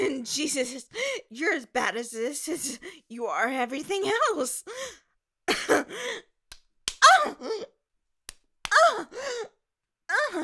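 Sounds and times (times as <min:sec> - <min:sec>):
speech: 0:00.2 - 0:06.3, 0:07.1 - 0:07.8, 0:08.8 - 0:10.4
breathy gasps: 0:05.9 - 0:06.3, 0:08.7 - 0:09.6
sharp dry slaps on skin: 0:06.5 - 0:07.1, 0:08.2 - 0:08.9.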